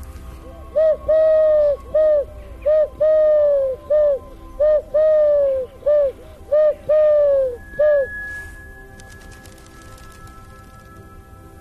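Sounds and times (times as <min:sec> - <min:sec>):
Eurasian collared dove cooing in a tree: 0:00.7 - 0:08.1.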